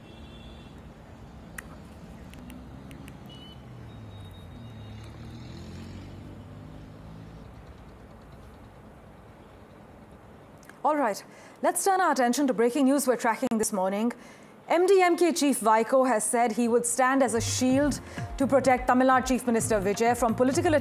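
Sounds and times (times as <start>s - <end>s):
engines of vehicles moving through deep water on a waterlogged road: 0.0s - 11.4s, 17.3s - 20.7s
sharp clicks: 1.5s - 3.4s
speech: 10.8s - 20.7s.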